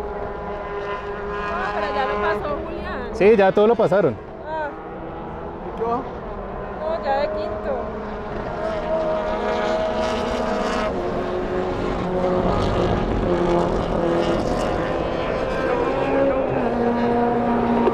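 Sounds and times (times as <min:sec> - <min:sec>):
smoking race car engine droning during a race lap: 0:00.0 - 0:17.9
speech: 0:03.2 - 0:04.3.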